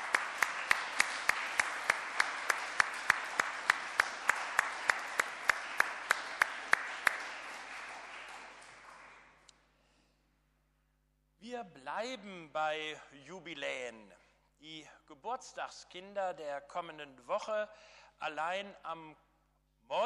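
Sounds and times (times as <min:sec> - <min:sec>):
crowd applauding a brass choir: 0:00.0 - 0:09.5
speech: 0:11.6 - 0:19.2, 0:19.9 - 0:20.0.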